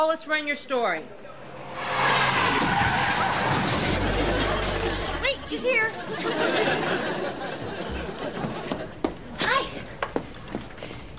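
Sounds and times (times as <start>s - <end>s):
speech: 0.0s - 2.0s, 5.5s - 7.8s
fast car tires screeching in a hard skid: 1.2s - 5.6s
deep car engine rumble: 1.3s - 5.5s
laughter: 3.6s - 9.0s.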